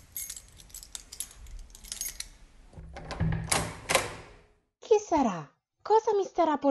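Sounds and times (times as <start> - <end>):
keys jingling as someone comes in: 0.0 - 2.7
speech: 5.1 - 6.6.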